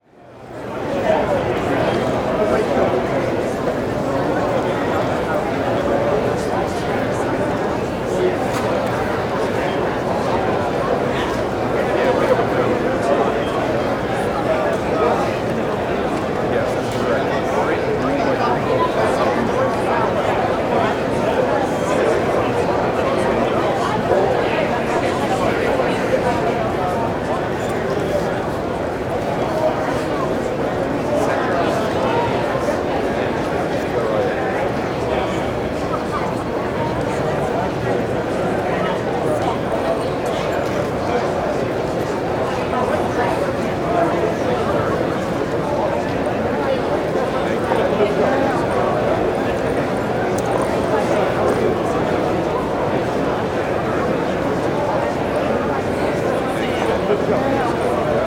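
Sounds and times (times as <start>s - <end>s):
dense indoor crowd walla in a hall: 0.0s - 58.2s.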